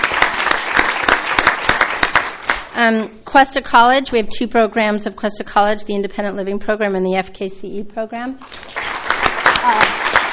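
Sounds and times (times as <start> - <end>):
audience applause: 0.0 - 2.7, 8.5 - 10.3
speech: 2.8 - 8.8, 9.6 - 10.0.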